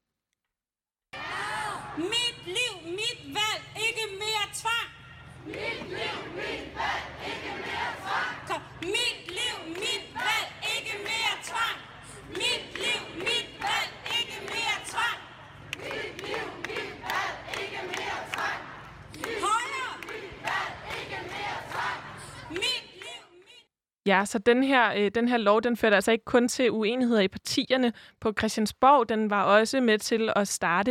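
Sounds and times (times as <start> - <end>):
large protest crowd chanting slogans in unison: 1.2 - 2.1, 5.3 - 23.5
speech: 2.0 - 8.4, 24.1 - 30.9.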